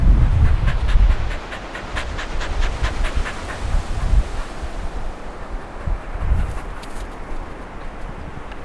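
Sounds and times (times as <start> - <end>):
sea: 0.0 - 8.6
dog: 0.3 - 4.8.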